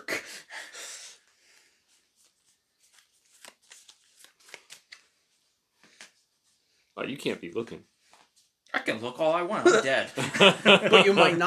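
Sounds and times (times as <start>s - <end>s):
playing cards being shuffled during a card game: 1.9s - 6.6s
speech: 7.0s - 8.0s, 8.9s - 11.4s
laughter: 10.1s - 11.4s.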